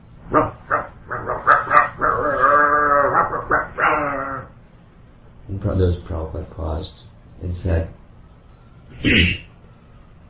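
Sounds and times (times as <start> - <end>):
dog barking and yelping outdoors: 0.2 - 4.6
speech: 5.6 - 8.0, 9.0 - 9.4.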